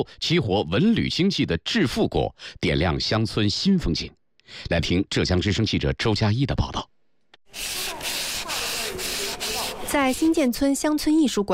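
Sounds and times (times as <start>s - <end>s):
speech: 0.0s - 6.9s, 7.5s - 8.2s, 9.9s - 11.5s
sandpaper rubbing a gourd shell by hand to smooth ridges and burrs: 7.5s - 10.4s.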